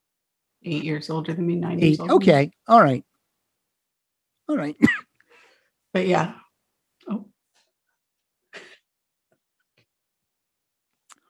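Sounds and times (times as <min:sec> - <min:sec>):
speech: 0:00.6 - 0:03.1, 0:04.5 - 0:05.0, 0:06.0 - 0:06.4, 0:07.1 - 0:07.3
harsh coughs after inhaling air: 0:04.8 - 0:05.2, 0:08.5 - 0:08.8.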